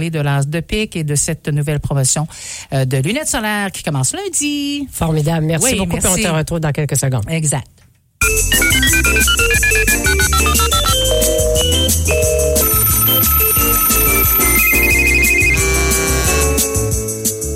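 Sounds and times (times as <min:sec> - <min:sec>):
speech: 0:00.0 - 0:14.6
bright melodic ringtone-style phone ring: 0:08.2 - 0:16.8
busy beat with bass and percussion: 0:08.2 - 0:17.5.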